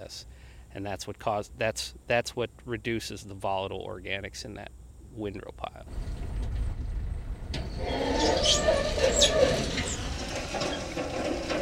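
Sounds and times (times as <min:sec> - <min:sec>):
speech: 0:00.1 - 0:06.1, 0:07.8 - 0:09.8
pickup truck engines rumbling, bringing yard waste to a compost site: 0:05.9 - 0:11.6.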